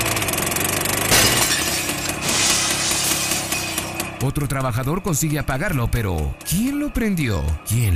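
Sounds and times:
driverless tractor engine drone: 0.0 - 7.9
tractor crashing through shoe shop glass window: 1.1 - 4.0
shoe shop window glass shattering: 1.1 - 4.1
debris clattering: 1.1 - 4.2
speech: 4.2 - 7.9.

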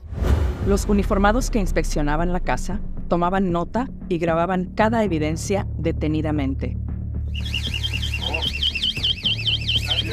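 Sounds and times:
speech: 0.7 - 7.8
high electronic alarm rigged inside a house warbling: 7.3 - 10.1.

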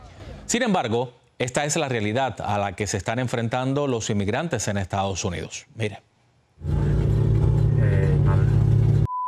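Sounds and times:
speech: 0.5 - 6.9
idling car engine revving: 6.6 - 9.1.

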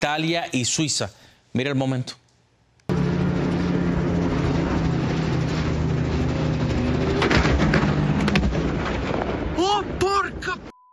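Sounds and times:
speech: 0.0 - 2.2
helicopter engine and rotors roaring in a mountainous area of northern Italy: 2.9 - 10.0.

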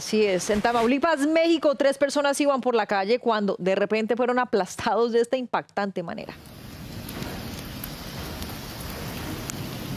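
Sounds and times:
speech: 0.0 - 6.6
heavy rain pouring on a street in Tamaulipas Mexico: 6.4 - 9.9.

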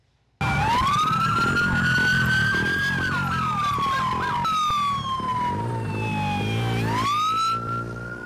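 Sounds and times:
LAPD patrol car sirens wailing during a chase in Los Angeles: 0.4 - 8.2
rumble of engines and traffic: 0.4 - 8.2.

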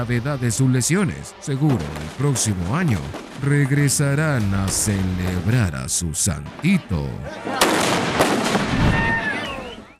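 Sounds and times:
dense continuous noisy background: 0.0 - 7.4
speech: 0.0 - 9.1
gunpowder blasts set off by hammer strikes at a religious festival: 1.5 - 5.6, 7.5 - 9.4.

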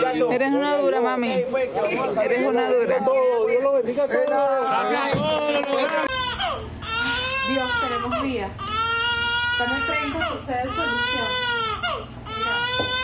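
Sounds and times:
speech: 0.1 - 6.3, 7.5 - 8.8, 9.6 - 11.5
newborn baby crying: 5.9 - 13.0.

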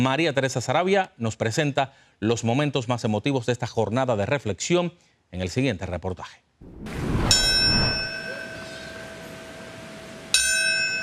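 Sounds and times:
speech: 0.0 - 7.5
memorial bell tolling at Ground Zero in New York: 7.3 - 9.6.

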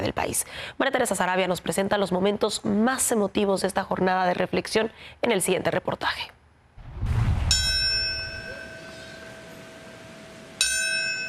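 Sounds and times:
speech: 0.0 - 6.4
memorial bell strike ringing: 7.5 - 9.8, 10.6 - 11.2.

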